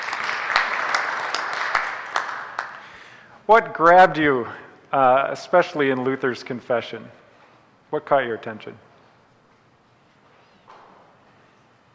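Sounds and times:
applause from a small group: 0.0 - 3.1
speech: 3.5 - 7.2, 7.9 - 8.9.

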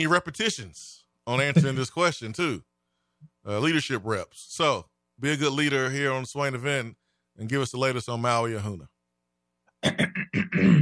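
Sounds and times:
speech: 0.0 - 2.7, 3.4 - 8.9, 9.8 - 10.8
person clearing throat: 9.8 - 10.8.

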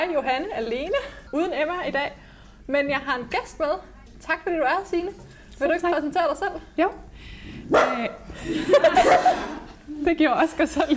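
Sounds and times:
speech: 0.0 - 10.9
dog barking excitedly: 7.7 - 8.1.

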